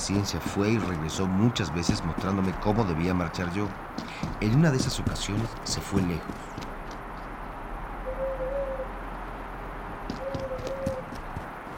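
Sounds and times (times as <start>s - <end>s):
speech: 0.1s - 6.7s
owl hooting: 8.0s - 9.0s, 10.1s - 11.1s.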